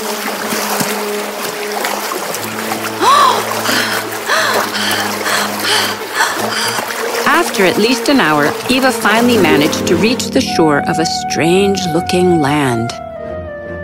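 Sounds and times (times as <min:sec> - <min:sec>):
oars splashing in water as a small boat is rowed: 0:00.0 - 0:10.6
water sloshing: 0:00.0 - 0:12.1
small rowing boat creaking: 0:02.4 - 0:10.6
speech: 0:07.4 - 0:13.0.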